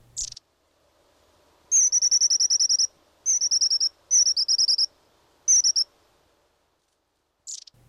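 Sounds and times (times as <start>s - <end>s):
faint low hum: 0.0s - 7.8s
long-tailed tit trilling calls: 0.1s - 0.5s, 1.7s - 4.9s, 5.5s - 5.9s, 7.4s - 7.8s.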